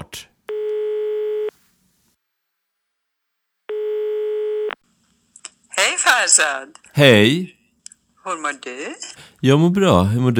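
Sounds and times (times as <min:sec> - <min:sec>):
telephone ringback tone heard through the handset: 0:00.5 - 0:01.5, 0:03.7 - 0:04.8
speech: 0:06.3 - 0:07.6, 0:08.2 - 0:10.3.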